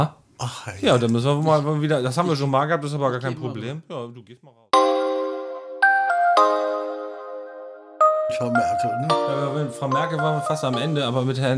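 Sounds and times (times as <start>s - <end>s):
speech: 0.0s - 4.7s, 6.4s - 6.6s, 8.3s - 11.5s
melodic electronic doorbell chiming: 4.8s - 7.1s, 8.0s - 11.4s.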